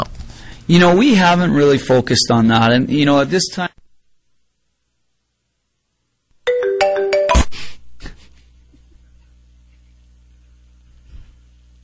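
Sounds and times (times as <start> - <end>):
speech: 0.7 - 3.8
phone ringtone: 6.5 - 7.5.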